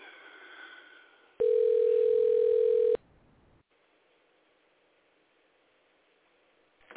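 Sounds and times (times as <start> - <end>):
telephone line tone while calling an assembly member's office: 1.4 - 3.0.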